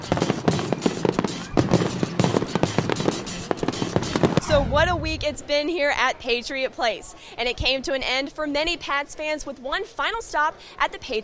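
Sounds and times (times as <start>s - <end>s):
grand finale fireworks barrage after a race: 0.0s - 5.8s
speech: 4.6s - 11.2s.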